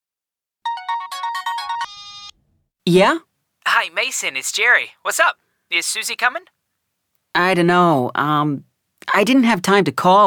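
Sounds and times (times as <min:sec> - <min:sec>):
telephone ringtone melodic electronic tones: 0:00.7 - 0:02.4
speech: 0:02.9 - 0:06.6, 0:07.4 - 0:10.2.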